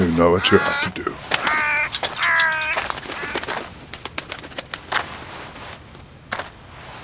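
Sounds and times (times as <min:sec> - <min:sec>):
crow cawing: 0:00.0 - 0:03.7
crow wings flapping: 0:00.0 - 0:05.7
speech: 0:00.2 - 0:01.2.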